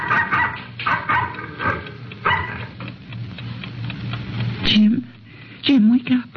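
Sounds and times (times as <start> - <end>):
dog barking: 0.0 - 2.7
speech: 5.6 - 6.3.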